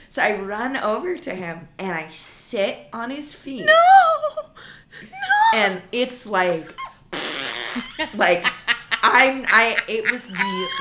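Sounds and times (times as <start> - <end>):
speech: 0.1 - 6.8, 7.8 - 10.7
human voice imitating a fart with a blown raspberry: 7.1 - 8.0
laughter: 7.8 - 10.7.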